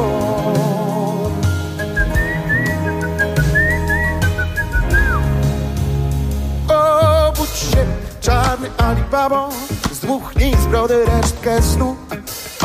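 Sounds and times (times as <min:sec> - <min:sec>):
loud band backing: 0:00.0 - 0:12.6
person whistling a twist tune with fast trills and slides: 0:01.5 - 0:05.4
speech: 0:10.2 - 0:12.2.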